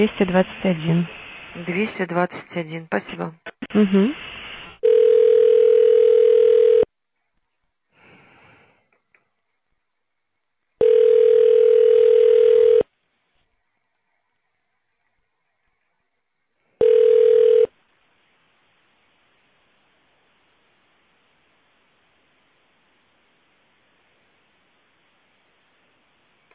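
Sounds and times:
speech: 0.0s - 4.3s
telephone ringback tone while a call is being put through: 4.8s - 6.9s, 10.8s - 12.8s, 16.8s - 17.7s.

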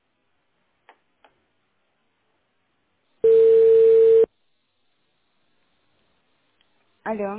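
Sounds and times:
telephone ringback tone while call connects: 3.2s - 4.3s.

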